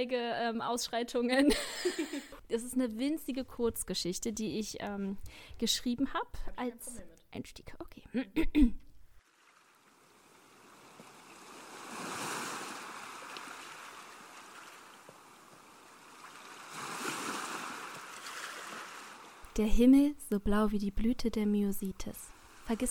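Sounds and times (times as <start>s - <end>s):
speech: 0.0s - 8.8s, 19.6s - 22.8s
laughter: 1.4s - 2.4s
ocean waves washing onto the shore: 9.3s - 19.5s.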